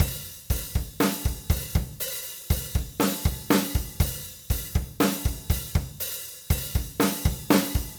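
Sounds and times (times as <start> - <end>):
drum: 0.0 - 7.9.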